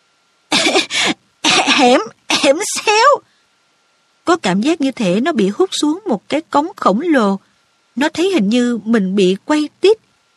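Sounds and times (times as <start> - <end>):
boy coughing after swallowing a mouthful of ash from a fireplace: 0.5 - 2.6
speech: 1.8 - 3.3, 4.3 - 10.1.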